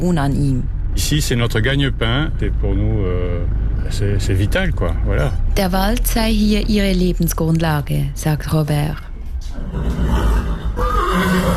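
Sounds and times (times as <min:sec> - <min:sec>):
speech: 0:00.0 - 0:10.1
horse whinnying in a stud farm stable: 0:09.6 - 0:11.5.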